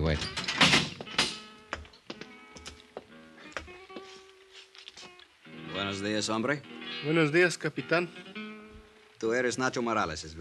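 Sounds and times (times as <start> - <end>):
speech: 0.0 - 0.4, 5.8 - 8.3, 9.2 - 10.4
heavy steel grill door pulled open with clanks and rattles: 0.1 - 1.4.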